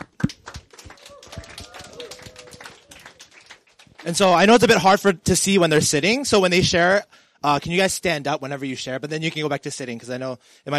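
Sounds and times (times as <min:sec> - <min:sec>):
crowd clapping: 0:00.0 - 0:05.0
speech: 0:04.0 - 0:10.7.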